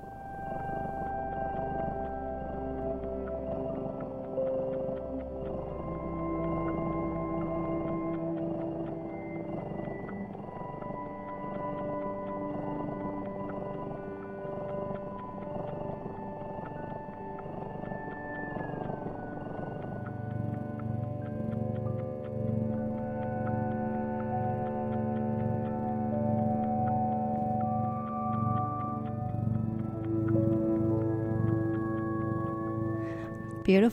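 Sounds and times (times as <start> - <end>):
low steady rumbling cat purr: 0.0 - 33.9
slow gliding tonal music for cats with sustained sliding notes: 0.0 - 33.9
soft rhythmic suckling ticks: 0.0 - 33.9
speech: 33.7 - 33.9.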